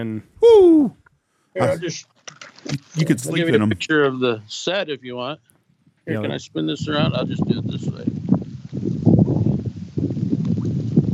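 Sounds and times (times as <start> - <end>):
speech: 0.0 - 1.0, 1.6 - 5.5, 6.1 - 8.2
wind buffeting the microphone: 6.1 - 11.1.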